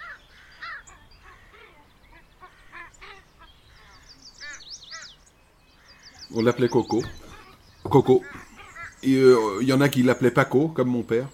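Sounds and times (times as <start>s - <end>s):
crow cawing: 0.0s - 5.2s, 5.8s - 9.4s
speech: 6.3s - 7.2s, 7.9s - 8.4s, 9.0s - 11.3s.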